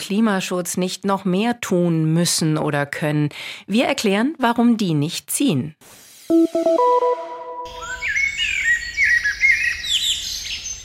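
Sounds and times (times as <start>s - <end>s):
speech: 0.1s - 7.8s
birds singing outdoors: 7.7s - 10.8s.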